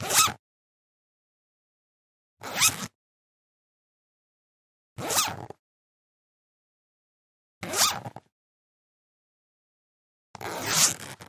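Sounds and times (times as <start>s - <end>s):
thin zipper moving fast: 0.0s - 0.4s, 2.4s - 3.0s, 5.0s - 5.6s, 7.6s - 8.3s, 10.4s - 11.2s.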